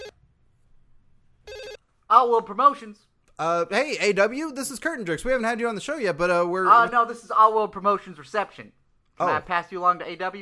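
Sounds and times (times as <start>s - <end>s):
electronic telephone ringback tone over a phone line on an outgoing call: 1.5s - 1.8s
speech: 2.1s - 10.3s.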